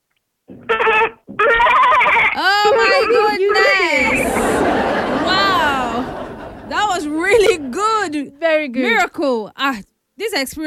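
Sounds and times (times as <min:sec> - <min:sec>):
person imitating goat bleats: 0:00.6 - 0:03.3
laughter: 0:02.6 - 0:08.4
speech: 0:07.3 - 0:10.6.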